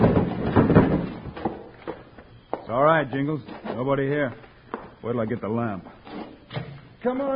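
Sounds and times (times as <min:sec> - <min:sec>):
door to a room being kicked open: 0:00.0 - 0:01.7
speech: 0:03.0 - 0:06.0, 0:07.0 - 0:07.3.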